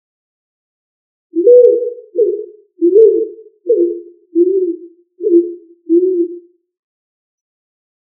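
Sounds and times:
pigeon cooing deeply: 1.4s - 6.5s.

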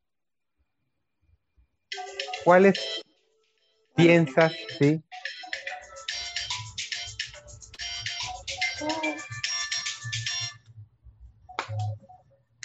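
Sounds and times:
mobile phone ringtone with bright repeating electronic melody: 1.9s - 3.0s, 4.0s - 10.6s
speech: 2.4s - 3.1s, 4.0s - 5.4s.

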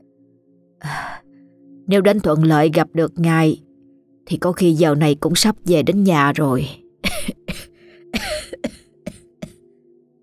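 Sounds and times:
speech: 1.9s - 3.6s, 4.3s - 7.4s
sick woman coughing hoarsely in a long fit: 7.0s - 9.6s.

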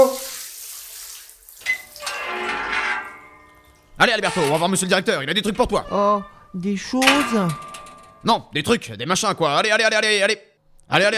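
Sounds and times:
shower water running: 0.0s - 2.2s
speech: 4.0s - 11.1s.

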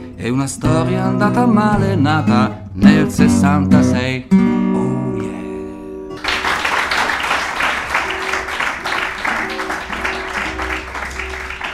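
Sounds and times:
speech: 0.2s - 4.5s
audience applause at a live folk concert: 6.2s - 11.7s.

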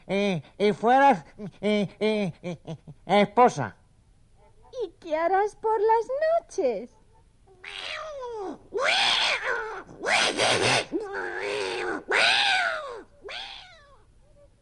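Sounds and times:
speech: 0.1s - 3.8s, 4.8s - 7.0s, 7.6s - 12.3s
cat meowing: 7.6s - 9.8s, 11.1s - 14.1s.

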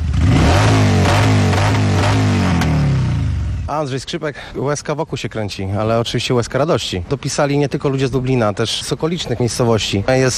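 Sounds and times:
motorcycle engines revving over a deep rumbling idle: 0.0s - 3.7s
speech: 3.8s - 10.3s.

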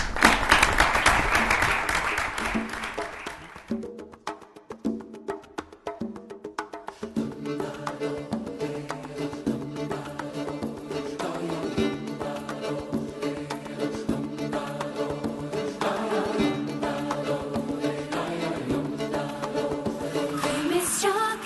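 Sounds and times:
audience applause at a gastronomy-days event: 0.0s - 3.7s
music with percussive beats: 0.0s - 21.4s.

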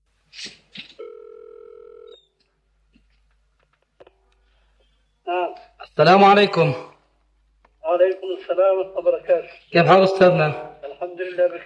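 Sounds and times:
telephone line tone at the start of a phone call: 1.0s - 2.2s
speech: 5.3s - 6.9s, 8.6s - 10.7s.

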